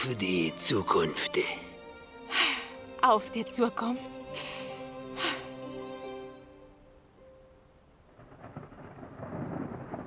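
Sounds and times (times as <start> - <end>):
speech: 0.0 - 1.7, 3.0 - 4.6
steady rain-like hiss: 8.0 - 10.0
sharp thunderclap: 8.2 - 10.0.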